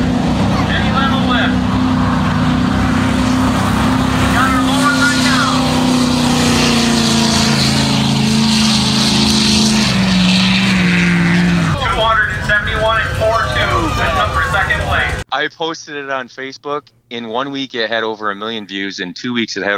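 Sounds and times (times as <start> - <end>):
faint crowd voices: 0.0 - 5.9, 11.4 - 15.2
truck engine roaring during a sled pull: 0.0 - 15.3
speech: 15.5 - 19.7.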